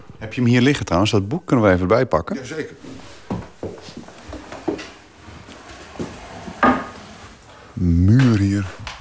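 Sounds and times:
speech: 0.2s - 3.0s, 7.8s - 8.8s
wooden chair creaking as someone climbs onto it: 2.8s - 9.0s.

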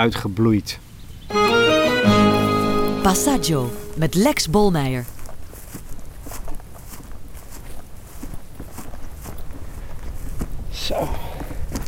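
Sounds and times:
speech: 0.0s - 2.2s, 3.0s - 5.1s
footsteps crunching while walking up a small hilltop outdoors: 4.3s - 10.6s
constant rustle: 5.0s - 11.8s.

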